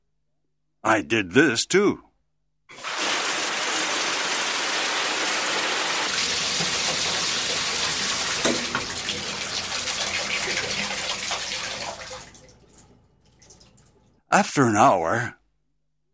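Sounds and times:
speech: 0.8 - 2.1, 14.3 - 15.4
shower water running: 2.7 - 14.2.

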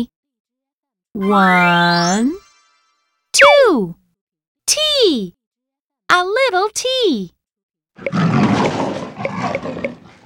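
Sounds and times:
speech: 1.2 - 2.4, 3.4 - 4.0, 4.7 - 5.4, 6.1 - 7.4, 8.0 - 8.8
tiger roaring: 8.0 - 10.2.

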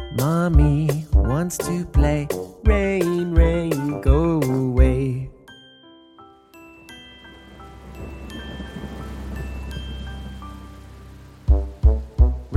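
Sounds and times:
speech: 0.2 - 4.2
faint chime-like tones: 5.5 - 11.0
steady rain pattering on a surface: 7.2 - 12.5.

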